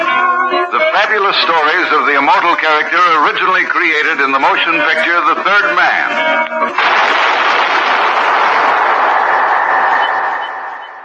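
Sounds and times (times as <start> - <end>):
speech: 1.0 - 7.4
gunshot fired in a sewer: 6.8 - 10.8.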